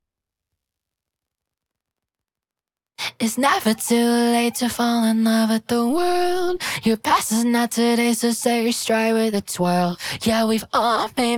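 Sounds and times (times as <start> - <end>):
raw vocal motif: 3.1 - 11.2.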